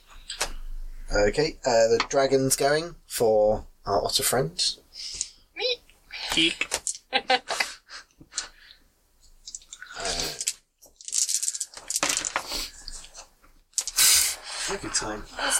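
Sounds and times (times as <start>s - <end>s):
speech: 1.1s - 5.2s, 6.4s - 7.6s, 14.7s - 15.5s
dice rolling and bouncing off table: 10.4s - 12.6s.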